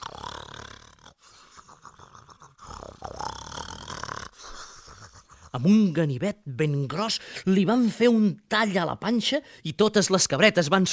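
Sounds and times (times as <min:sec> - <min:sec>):
wolf snoring loudly and raspily: 0:00.0 - 0:01.2, 0:02.0 - 0:04.4
speech: 0:05.5 - 0:10.9.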